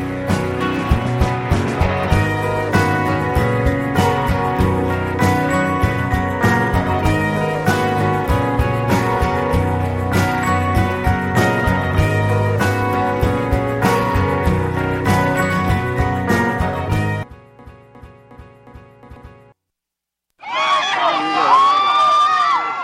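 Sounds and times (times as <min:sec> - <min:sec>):
rhythmic music: 0:00.0 - 0:19.6
fans cheering and shouting outside a courthouse: 0:20.4 - 0:22.8.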